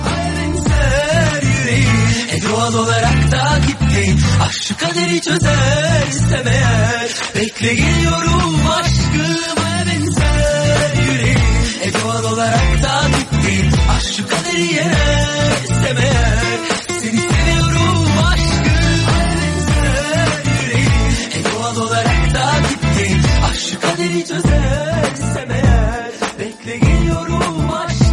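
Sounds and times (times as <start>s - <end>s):
thumping four-on-the-floor beat: 0.0s - 1.0s, 10.2s - 11.7s, 13.6s - 14.1s, 15.0s - 21.2s, 22.1s - 23.6s, 24.5s - 24.8s, 25.6s - 26.0s, 26.8s - 27.2s
Turkish pop dance remix with sung melody: 0.0s - 28.1s
speech: 2.5s - 10.2s, 12.0s - 17.3s, 23.8s - 25.5s.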